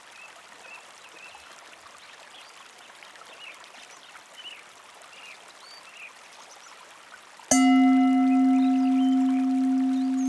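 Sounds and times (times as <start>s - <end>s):
gong struck during meditation: 7.5s - 10.2s.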